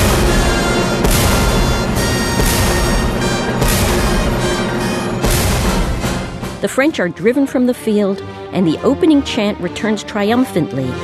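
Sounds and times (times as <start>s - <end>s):
heavy cannon shots: 0.0s - 6.6s
loud full orchestra: 0.0s - 11.0s
speech: 6.6s - 11.0s.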